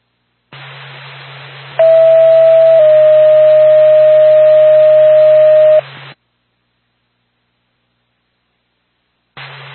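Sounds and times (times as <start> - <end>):
radio static hiss on an ambulance dispatch radio channel: 0.5 - 6.2, 9.4 - 9.7
electronic telephone tone on an ambulance dispatch radio channel: 1.8 - 5.9.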